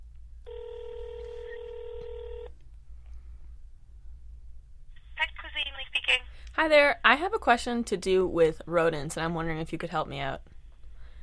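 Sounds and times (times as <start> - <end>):
ringback tone on an outgoing phone call to a pet supply store: 0.5 - 2.5
speech: 6.1 - 10.5.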